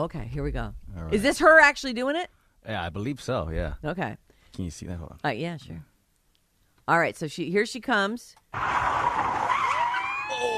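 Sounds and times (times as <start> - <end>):
speech: 0.0 - 5.9, 6.9 - 9.4
car tires screeching in a 180-degree spin: 8.6 - 10.4.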